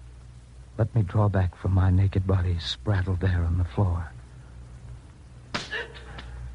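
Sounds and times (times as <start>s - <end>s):
low steady hum: 0.0s - 6.5s
speech: 0.8s - 4.2s
whip cracking in a beating: 5.5s - 5.8s.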